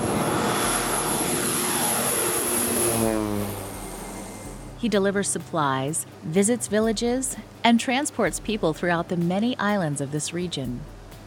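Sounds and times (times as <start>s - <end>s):
small propeller airplane engine in Indonesia droning and revving: 0.0s - 5.4s
speech: 4.8s - 11.0s.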